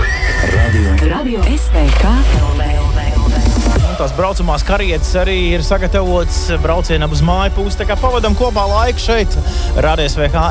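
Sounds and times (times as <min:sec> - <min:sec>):
horse whinnying loudly: 0:00.0 - 0:01.1
low rumble: 0:01.1 - 0:10.4
speech: 0:01.2 - 0:03.1, 0:04.0 - 0:10.4.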